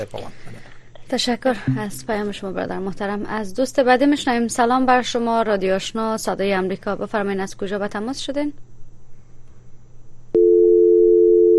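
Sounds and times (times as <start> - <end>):
speech: 0.0 - 8.6
telephone line tone after a dropped connection: 10.4 - 11.5.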